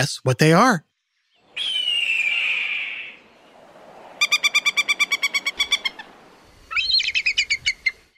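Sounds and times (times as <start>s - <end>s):
speech: 0.0s - 0.9s
hawk screaming: 1.5s - 7.8s
falcon calling in sharp piercing notes: 1.5s - 8.0s.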